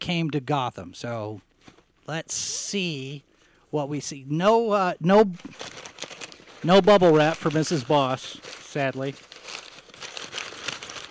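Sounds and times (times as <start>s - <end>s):
speech: 0.1s - 1.5s, 2.1s - 5.8s, 6.6s - 9.3s
brown packing paper crumpling during unboxing: 5.4s - 11.0s.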